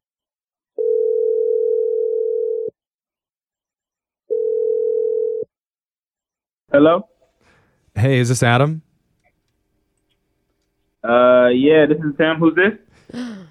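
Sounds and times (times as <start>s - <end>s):
telephone ringing tones: 0.8s - 2.7s, 4.3s - 5.5s
speech: 6.8s - 7.1s, 8.0s - 8.9s, 11.1s - 13.2s.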